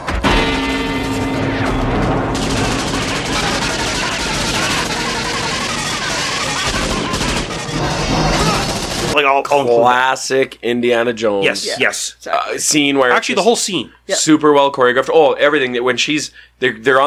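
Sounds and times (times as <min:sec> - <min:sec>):
machine-gun fire in a film scene striking a metal gong: 0:00.0 - 0:09.2
speech: 0:09.2 - 0:17.0.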